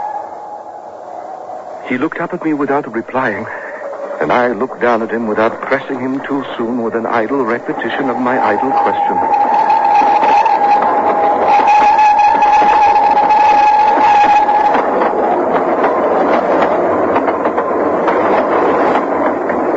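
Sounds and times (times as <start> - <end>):
fast train passing: 0.0 - 19.7
speech: 1.8 - 3.6, 4.2 - 9.6
high whistle-like tone: 7.4 - 14.8.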